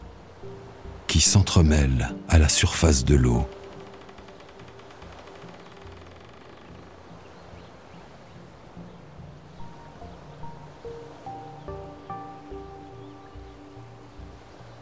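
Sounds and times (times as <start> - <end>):
gentle breeze over open lake water: 0.0 - 14.8
speech: 1.1 - 3.6.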